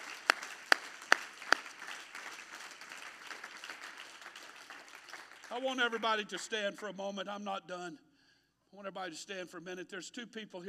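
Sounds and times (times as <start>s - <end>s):
scattered applause: 0.0s - 6.8s
crowd clapping in steady unison beat: 0.0s - 7.0s
speech: 5.5s - 8.1s, 8.7s - 10.6s.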